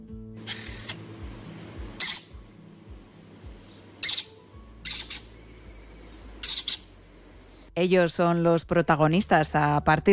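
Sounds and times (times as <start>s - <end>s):
lesser kestrel calling in Quer Guadalajara: 0.4s - 1.1s, 2.0s - 2.4s, 3.7s - 7.0s
low steady hum: 0.4s - 10.0s
speech: 7.8s - 10.1s.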